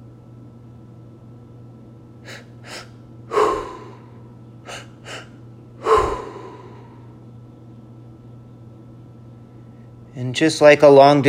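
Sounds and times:
faint low hum: 0.0 - 11.2
rhythmic deep breathing: 2.2 - 7.2
speech: 10.2 - 11.2.

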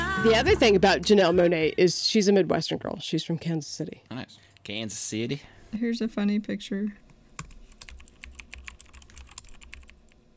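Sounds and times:
low hum: 0.1 - 10.3
speech: 0.2 - 7.0
computer keyboard typing: 7.4 - 10.2.

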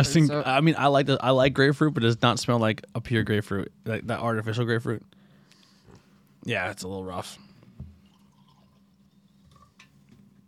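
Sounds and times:
speech: 0.0 - 5.2, 6.4 - 7.4
beer pouring into a cup with fizzing: 8.0 - 9.9.

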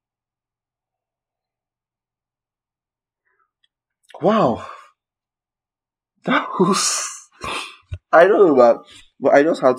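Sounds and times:
speech: 4.2 - 4.8, 6.2 - 9.7
person yawning: 6.7 - 7.8.

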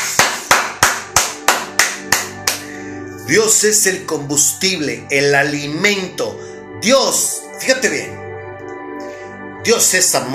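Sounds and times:
crowd clapping in unison: 0.2 - 2.6
speech: 3.3 - 8.2, 9.6 - 10.3.

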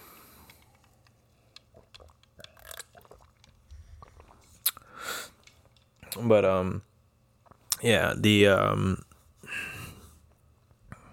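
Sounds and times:
person sipping a drink: 0.5 - 5.8
slurping: 1.5 - 4.8
swallowing noises: 1.5 - 4.8
speech: 6.2 - 6.9, 7.8 - 9.1.

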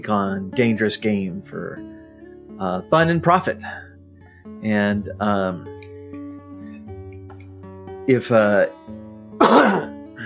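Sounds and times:
speech: 0.0 - 2.0, 2.6 - 3.8, 4.5 - 5.8, 8.0 - 9.9
person coughing: 9.4 - 10.2.

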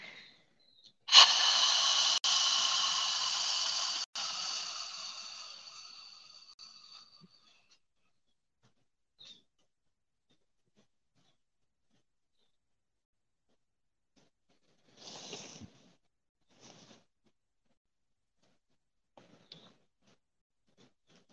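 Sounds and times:
long exhale through the mouth during a guided breathing exercise: 1.1 - 7.4.

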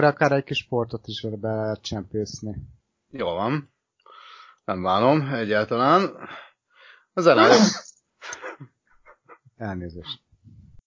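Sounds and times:
speech: 0.0 - 3.7, 4.7 - 6.5, 7.2 - 8.8, 9.6 - 10.2
person sneezing at a microphone: 7.4 - 9.3.

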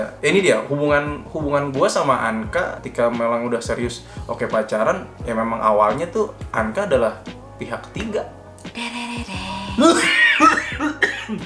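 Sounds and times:
speech: 0.0 - 11.4
person coughing: 9.7 - 11.4.

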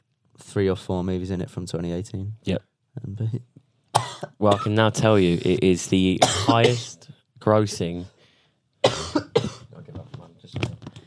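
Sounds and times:
speech: 0.4 - 3.6, 4.3 - 8.1
person coughing: 4.0 - 4.8, 6.2 - 7.0, 8.8 - 9.7.

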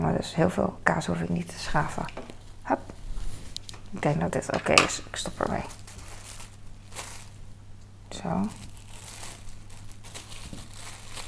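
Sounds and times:
speech: 0.0 - 3.0, 3.9 - 5.8, 8.2 - 8.6
plastic cling film crinkling around a piece of Dutch cheese: 5.1 - 7.5, 8.4 - 11.2.

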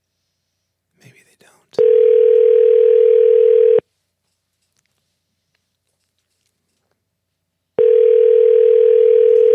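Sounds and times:
phone ringback tone of an outgoing call from a recording studio: 1.8 - 3.8, 7.8 - 9.5.

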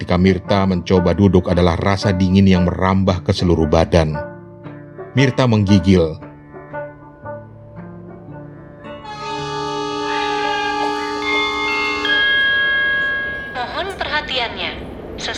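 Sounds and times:
speech: 0.1 - 4.3, 5.2 - 6.3
train station bell chime ringing a short melody: 9.0 - 15.1.

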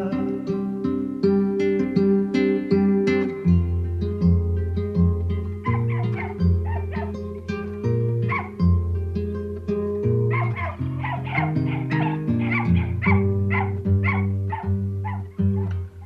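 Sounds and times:
musical backing: 0.0 - 16.0
dog yipping and whimpering: 5.6 - 7.2, 8.2 - 8.6, 10.3 - 16.0.

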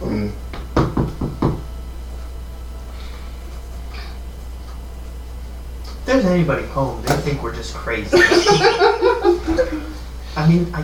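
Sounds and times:
low hum: 0.0 - 10.8
knocking on a door: 0.6 - 1.6
speech: 6.1 - 10.8
laughter: 8.1 - 10.0.

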